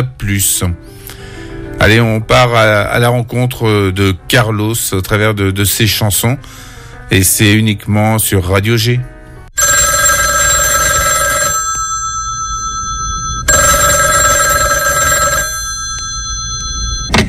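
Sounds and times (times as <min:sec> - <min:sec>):
speech: 0:00.0 - 0:01.2, 0:01.8 - 0:09.1
telephone bell ringing: 0:09.6 - 0:17.2.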